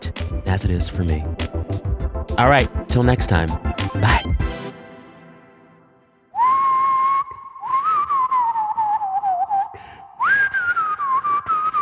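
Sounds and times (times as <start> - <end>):
speech: 0.5 - 1.5, 2.3 - 4.3
person whistling a TV theme song tune: 6.4 - 11.8.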